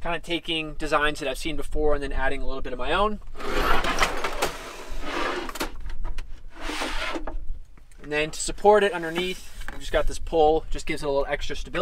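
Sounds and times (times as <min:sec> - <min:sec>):
speech: 0:00.0 - 0:04.5, 0:08.1 - 0:11.8
pull-out drawer sliding on drawer slides: 0:03.4 - 0:05.8, 0:06.5 - 0:07.4.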